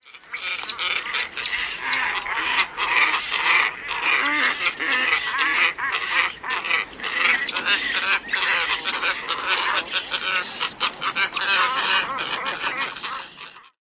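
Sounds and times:
Glossy Ibis colony calling: 0.0s - 13.7s.

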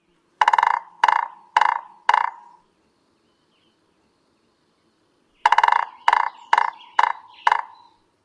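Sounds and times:
female Williamson's Sapsucker drumming: 0.0s - 2.7s, 5.3s - 8.0s.

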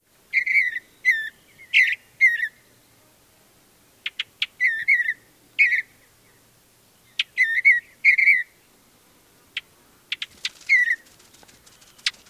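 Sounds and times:
Mountain Bluebird song: 0.0s - 3.1s, 4.0s - 8.8s, 9.5s - 12.2s
Mountain Bluebird chik calls: 0.3s - 2.6s, 4.0s - 6.4s, 7.0s - 8.6s, 9.6s - 12.2s.

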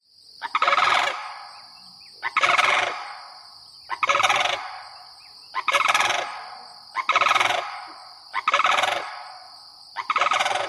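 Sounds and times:
sandhill crane rattle calls: 0.5s - 1.4s, 2.3s - 3.2s, 3.9s - 4.9s, 5.6s - 9.2s, 10.0s - 10.6s.

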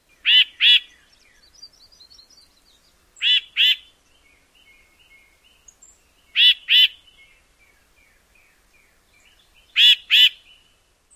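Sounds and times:
Tufted Titmouse harsh doublet calls: 0.2s - 1.0s, 3.2s - 3.9s, 6.3s - 7.0s, 9.7s - 10.4s.

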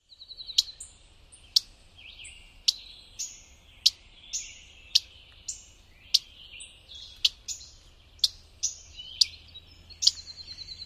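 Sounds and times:
female Mourning Warbler alarm calls: 0.5s - 10.8s.

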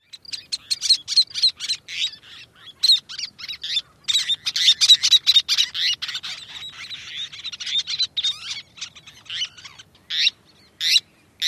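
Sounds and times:
bird calls at nest: 0.0s - 11.4s.

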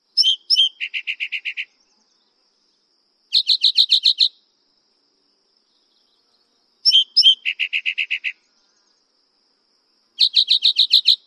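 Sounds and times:
Spotted Towhee singing: 0.0s - 4.5s, 5.4s - 9.2s, 10.2s - 11.2s.

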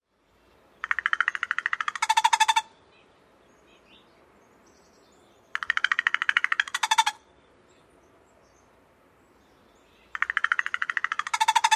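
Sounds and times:
crow rattling call: 0.8s - 2.7s, 5.5s - 7.2s, 10.1s - 11.7s.

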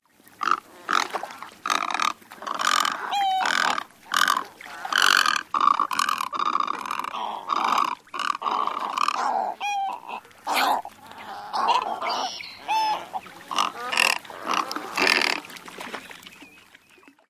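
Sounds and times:
courting group of Great Egrets croaking: 1.7s - 15.4s.

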